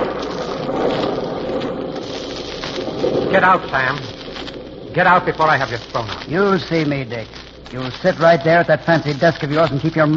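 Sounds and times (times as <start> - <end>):
distant thunder: 0.0 - 6.4
steady dense rainfall: 0.0 - 10.1
speech: 3.4 - 4.2, 5.0 - 10.1.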